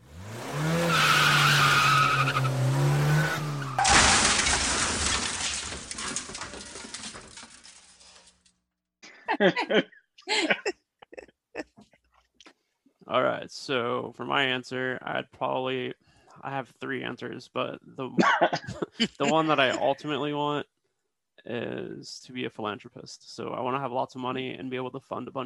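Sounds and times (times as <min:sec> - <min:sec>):
race car driving past fast with engine whine: 0:00.0 - 0:03.8
race car tires screeching and skidding: 0:00.0 - 0:07.8
clattering: 0:03.8 - 0:08.6
laughter: 0:09.1 - 0:11.2, 0:18.1 - 0:20.3
speech: 0:09.4 - 0:09.9, 0:13.5 - 0:20.7, 0:21.4 - 0:25.4.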